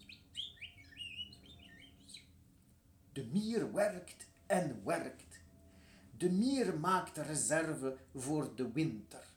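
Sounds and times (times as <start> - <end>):
birds singing in bright high chirps and whistled trills: 0.0 - 2.4
low steady hum: 0.0 - 9.3
speech: 3.2 - 5.4, 6.2 - 9.3.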